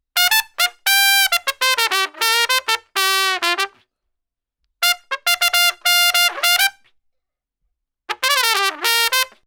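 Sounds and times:
trumpet solo: 0.2s - 3.8s, 4.8s - 6.9s, 8.1s - 9.4s.

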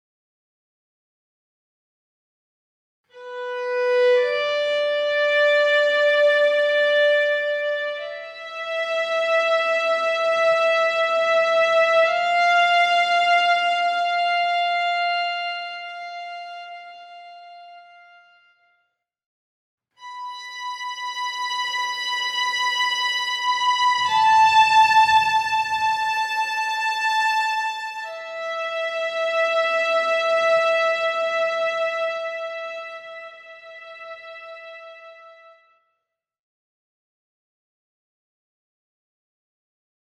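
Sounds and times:
violin strings: 3.1s - 18.6s, 20.0s - 35.6s.

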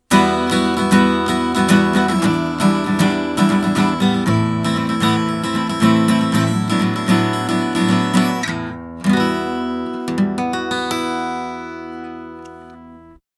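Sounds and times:
steel string guitar recorded with cardioid microphone: 0.0s - 13.2s.

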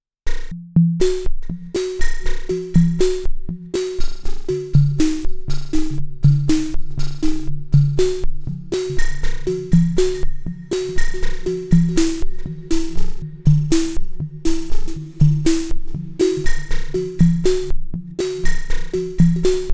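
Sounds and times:
sine tone auto pattern: 1.2s - 19.7s.

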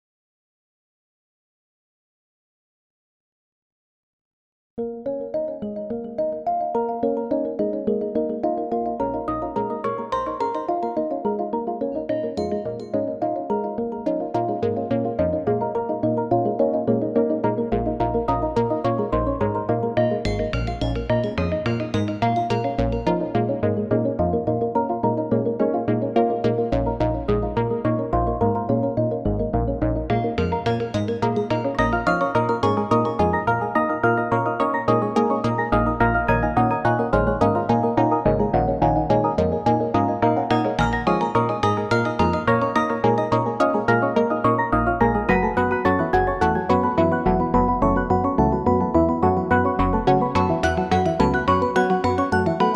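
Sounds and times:
KORG wavestate synthesizer factory sound: 4.8s - 52.7s.

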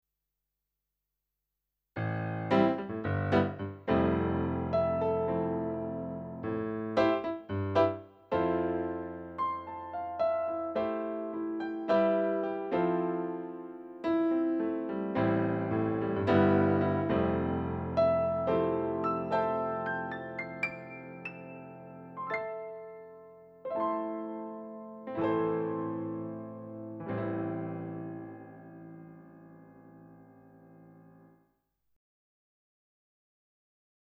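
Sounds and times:
SP280 piano: 2.0s - 31.5s.

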